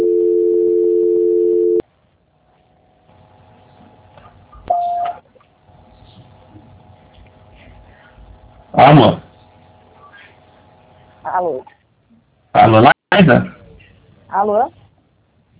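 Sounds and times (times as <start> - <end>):
steady telephone call transfer tone: 0.0 - 1.8, 4.7 - 5.2
speech: 8.8 - 9.2, 11.4 - 11.8, 12.6 - 13.6, 14.3 - 14.8.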